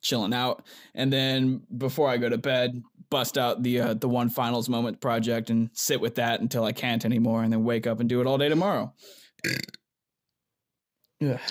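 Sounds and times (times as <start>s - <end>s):
speech: 0.1s - 9.8s, 11.2s - 11.4s
person burping: 9.4s - 9.8s, 11.2s - 11.4s.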